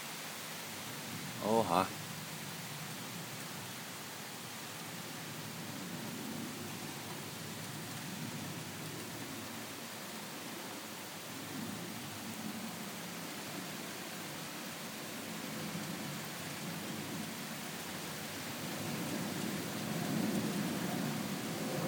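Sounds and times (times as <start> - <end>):
heavy rain: 0.0 - 21.8
speech: 1.4 - 2.0.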